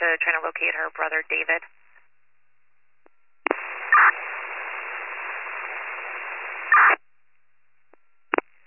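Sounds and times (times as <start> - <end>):
radio static from a unit keying up: 0.0 - 1.7, 3.4 - 7.0
speech: 0.1 - 1.8
radio unit clicks: 3.4 - 7.0, 8.3 - 8.5.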